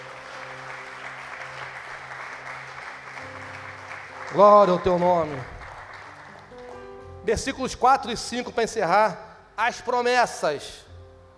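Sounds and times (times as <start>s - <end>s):
church audience applauding during a sermon: 0.0s - 7.0s
speech: 4.3s - 5.5s, 7.3s - 10.8s.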